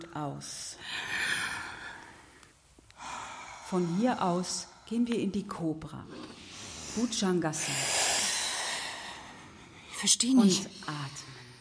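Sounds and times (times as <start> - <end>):
speech: 0.2 - 1.1, 3.7 - 7.9, 10.0 - 11.4
group doing ujjayi yoga breathing: 0.8 - 5.0, 6.1 - 10.0.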